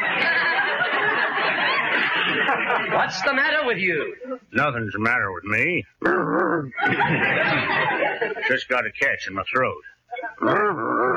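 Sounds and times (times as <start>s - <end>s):
laughter: 0.0s - 4.4s, 6.6s - 11.1s
speech: 2.6s - 10.9s
man imitating a dog whimpering and growling: 5.7s - 6.8s, 10.3s - 11.1s.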